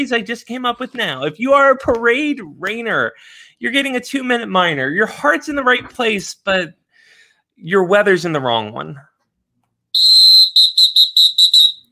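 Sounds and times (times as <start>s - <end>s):
speech: 0.0s - 6.8s, 7.6s - 9.1s
shrill whistle blasts: 10.0s - 11.8s.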